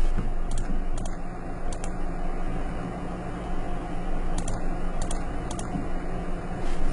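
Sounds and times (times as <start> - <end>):
steady humming background: 0.0 - 6.9
computer keyboard keystrokes clicking: 0.5 - 2.0, 4.4 - 5.7.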